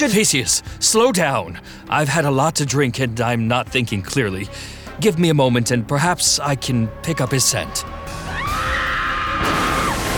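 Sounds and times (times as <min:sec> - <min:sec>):
speech: 0:00.0 - 0:08.3
woman screaming in the distance: 0:08.2 - 0:10.0.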